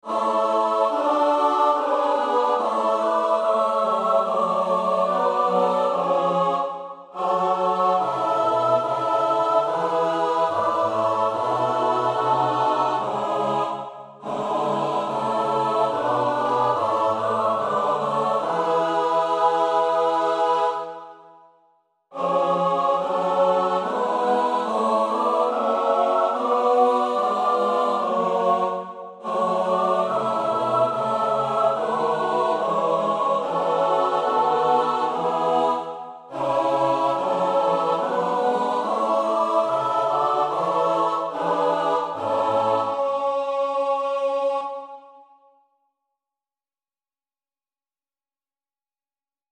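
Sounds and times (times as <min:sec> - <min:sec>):
SATB choir part singing: 0:00.0 - 0:21.5, 0:22.1 - 0:45.5.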